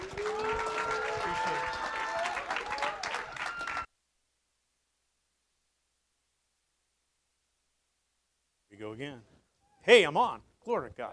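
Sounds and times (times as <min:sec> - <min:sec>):
audience applauding: 0:00.0 - 0:03.9
speech: 0:08.9 - 0:11.1.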